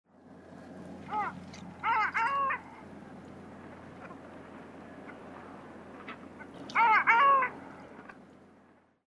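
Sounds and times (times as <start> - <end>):
long-tailed duck in Nemuro: 1.1 - 2.8, 6.1 - 7.6.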